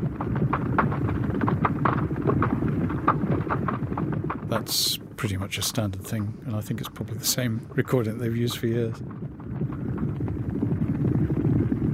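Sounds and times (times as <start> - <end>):
horses galloping through a hurdle hedge: 0.0 - 11.9
speech: 4.6 - 9.2.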